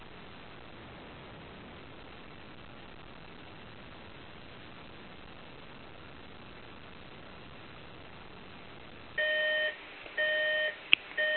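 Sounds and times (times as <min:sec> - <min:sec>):
alarm clock beeping: 0:09.2 - 0:11.3.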